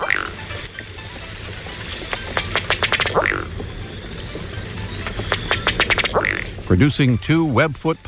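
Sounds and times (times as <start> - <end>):
Ruddy Duck display call: 0.0 - 0.6, 1.7 - 6.9
speech: 6.7 - 8.0.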